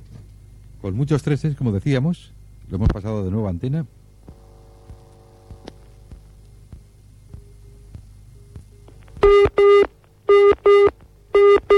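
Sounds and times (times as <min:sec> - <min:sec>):
faint low hum: 0:00.0 - 0:11.7
speech: 0:00.8 - 0:04.0
telephone busy-style tone for a number not in service: 0:09.2 - 0:11.7.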